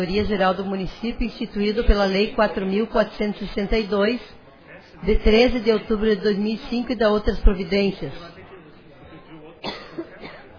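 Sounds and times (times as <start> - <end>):
speech: 0.0 - 4.4, 5.0 - 8.3
faint steady murmur: 0.0 - 10.5
cough during a municipal legislative session: 9.6 - 10.5.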